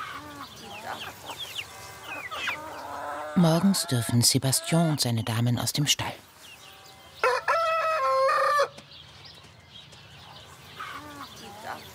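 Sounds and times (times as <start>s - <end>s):
chickens clucking: 0.0s - 9.4s, 10.1s - 11.9s
faint bird sounds: 0.0s - 11.9s
speech: 3.4s - 6.3s
rooster crowing: 7.2s - 8.8s.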